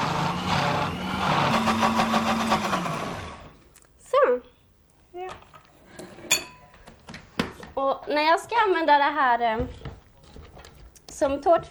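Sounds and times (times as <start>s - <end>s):
electric blender whirring: 0.0s - 3.5s
speech: 8.1s - 9.8s, 11.2s - 11.6s.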